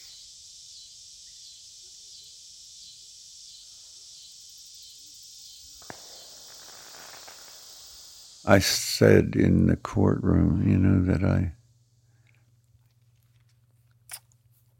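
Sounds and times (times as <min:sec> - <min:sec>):
chorus of insects chirping at dusk in a valley: 0:00.0 - 0:14.4
sharp crack: 0:05.6 - 0:09.1
speech: 0:08.5 - 0:11.6.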